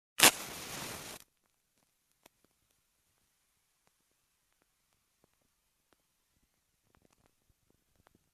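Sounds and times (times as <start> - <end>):
match lighting up on matchbox: 0.2 - 1.3.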